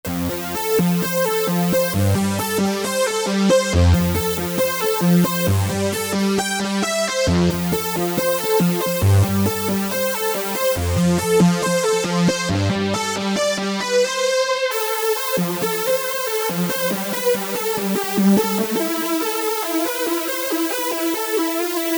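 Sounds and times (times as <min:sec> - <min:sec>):
Korg MS2000 synthesizer: 0:00.0 - 0:21.9.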